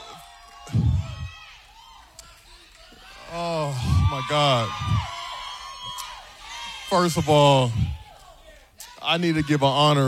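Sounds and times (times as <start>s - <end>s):
excited crowd of many voices cheering: 0.0s - 10.0s
speech: 4.2s - 5.1s, 6.9s - 8.0s, 9.1s - 10.0s.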